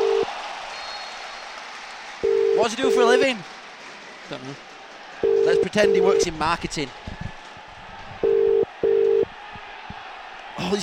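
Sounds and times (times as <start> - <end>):
telephone ringback tone of an outgoing call: 0.0 - 0.3, 2.2 - 3.1, 5.2 - 6.3, 8.2 - 9.3
speech: 2.6 - 3.5, 4.3 - 4.7, 5.5 - 7.0.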